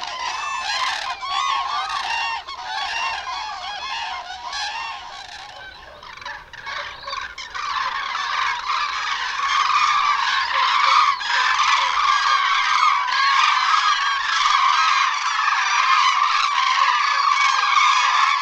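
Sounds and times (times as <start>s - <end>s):
Common crane flock trumpeting and honking: 0.0s - 18.4s.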